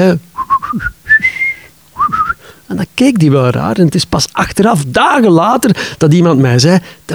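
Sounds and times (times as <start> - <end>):
speech: 0.0 - 1.0, 2.7 - 7.1
person whistling a tune inside a Russian home: 0.4 - 2.4.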